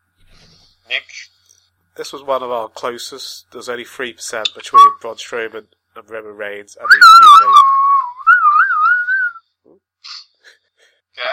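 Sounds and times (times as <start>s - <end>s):
speech: 2.0s - 7.7s
person whistling in place of a drum roll: 4.7s - 5.0s, 6.9s - 9.4s.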